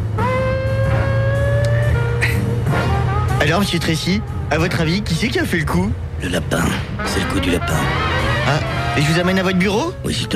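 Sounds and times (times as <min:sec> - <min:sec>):
old Fiat Stilo car engine accelerating: 0:00.0 - 0:09.8
speech: 0:03.5 - 0:10.3.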